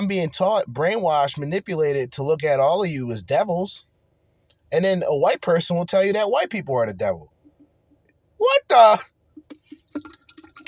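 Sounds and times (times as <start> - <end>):
speech: 0.1 - 3.9, 4.7 - 7.3, 8.4 - 9.1
iced tea being poured into a glass: 9.4 - 10.6.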